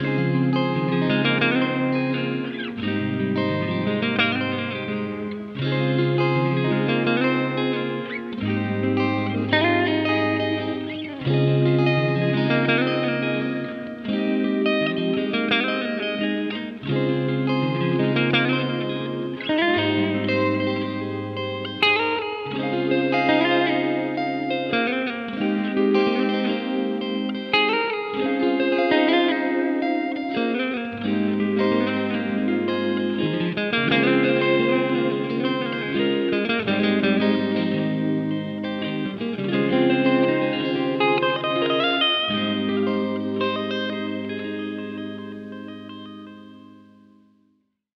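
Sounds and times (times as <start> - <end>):
guitar loop in G sharp major: 0.0 - 47.5.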